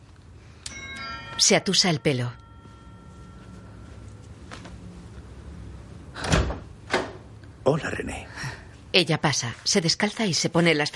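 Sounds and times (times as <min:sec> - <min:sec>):
low steady hum: 0:00.0 - 0:10.9
doorbell of a fifth-floor apartment chiming: 0:00.7 - 0:04.4
speech: 0:01.4 - 0:02.4, 0:07.7 - 0:08.2, 0:08.9 - 0:10.9.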